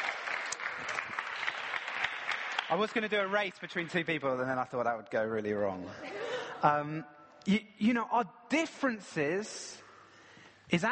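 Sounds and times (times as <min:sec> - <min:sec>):
audience applause for volunteers after a group demonstration: 0:00.0 - 0:03.4
speech: 0:02.7 - 0:09.8, 0:10.7 - 0:10.9
laughter: 0:05.8 - 0:07.0.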